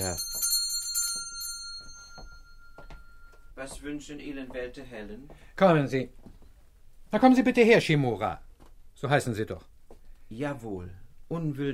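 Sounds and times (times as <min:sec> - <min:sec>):
speech: 0:00.0 - 0:00.5, 0:03.6 - 0:06.3, 0:07.1 - 0:08.4, 0:09.0 - 0:09.7, 0:10.3 - 0:11.7
servant's bell rung by pulling the bell pull: 0:00.0 - 0:04.3.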